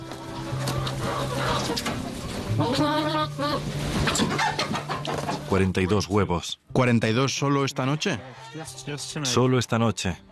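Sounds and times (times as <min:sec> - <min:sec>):
hen clucking: 0:00.0 - 0:06.2, 0:07.5 - 0:09.4
speech: 0:01.7 - 0:04.8, 0:05.4 - 0:10.3.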